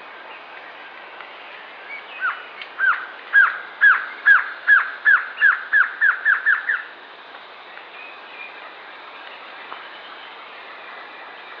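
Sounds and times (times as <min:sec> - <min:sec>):
Glossy antshrike Sakesphorus luctuosus luctuosus slurred calls: 0:02.2 - 0:06.9.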